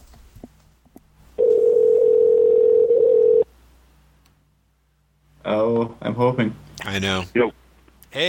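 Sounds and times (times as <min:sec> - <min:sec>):
phone ringback tone: 0:01.4 - 0:03.5
speech: 0:05.8 - 0:08.2.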